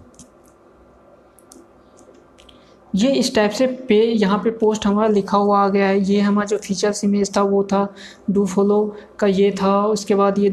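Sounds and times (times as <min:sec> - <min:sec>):
computer mouse clicks: 0:00.0 - 0:00.6, 0:01.3 - 0:02.6
quiet hum: 0:00.0 - 0:10.5
speech: 0:02.9 - 0:10.5.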